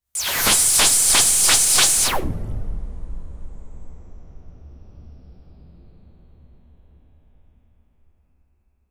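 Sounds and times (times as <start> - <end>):
laser sound: 0.2 - 2.5.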